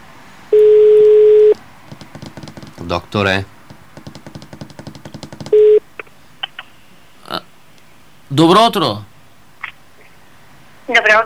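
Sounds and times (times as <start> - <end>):
telephone ringback tone buzz for an unanswered call: 0.5 - 1.6, 5.5 - 5.8
speech: 2.9 - 3.6, 8.4 - 9.1, 10.9 - 11.2.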